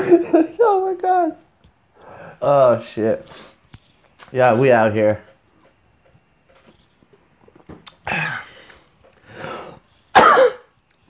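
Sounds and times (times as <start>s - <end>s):
speech: 0.0s - 1.4s, 2.4s - 3.5s, 4.3s - 5.3s
person coughing: 10.2s - 10.7s.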